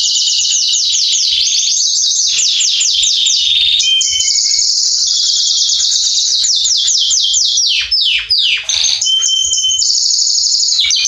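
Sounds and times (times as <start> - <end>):
male Belgian canary singing: 0.0 - 11.0.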